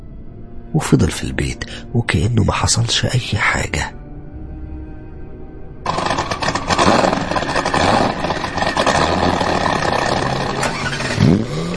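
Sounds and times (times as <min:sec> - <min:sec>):
speech: 0:00.7 - 0:04.0
car engine starting and running with a rough clattering drone: 0:05.9 - 0:11.7.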